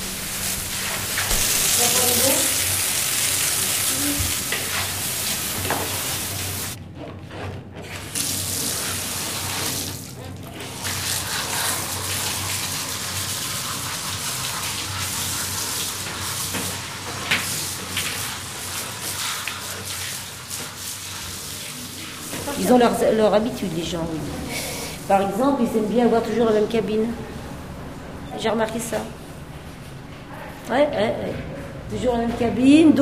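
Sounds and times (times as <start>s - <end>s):
water and disinfectant spraying at a cleaning station: 0.0s - 6.8s, 8.1s - 25.4s
brush scrubbing at a cleaning station: 0.0s - 8.0s, 10.6s - 23.9s
speech: 22.7s - 27.3s, 28.4s - 29.2s, 30.7s - 33.0s.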